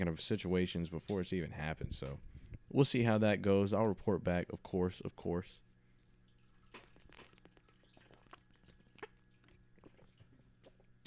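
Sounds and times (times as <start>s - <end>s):
speech: 0.0s - 5.6s
low hum: 0.0s - 11.0s
person sipping water: 6.5s - 11.0s.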